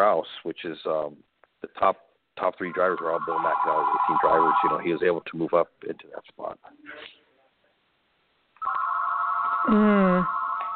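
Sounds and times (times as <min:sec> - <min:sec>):
speech: 0:00.0 - 0:07.2, 0:09.6 - 0:10.4
electronic phone ringtone beeping: 0:02.7 - 0:04.9, 0:08.6 - 0:10.7.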